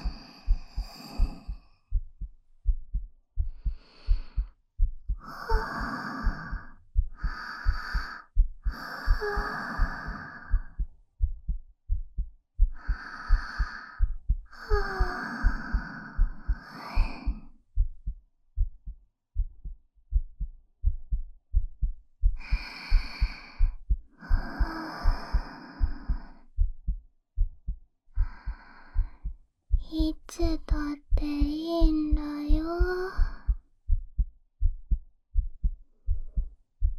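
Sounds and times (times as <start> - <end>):
breathy sighs and gasps: 0.0 - 2.0, 3.4 - 10.9, 12.6 - 17.6, 22.3 - 26.7, 28.1 - 33.6
steady heartbeat thudding: 0.0 - 36.9.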